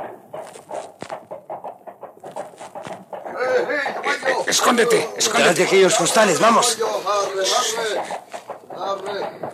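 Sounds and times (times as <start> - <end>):
several horses' hooves clopping approaching a stable: 0.0 - 9.5
speech: 4.5 - 8.2.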